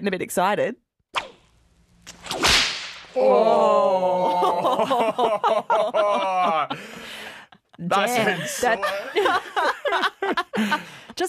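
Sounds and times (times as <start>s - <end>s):
speech: 0.0s - 1.3s, 3.2s - 6.9s, 7.8s - 11.2s
whip cracking: 1.1s - 3.2s
laughter: 3.2s - 11.2s.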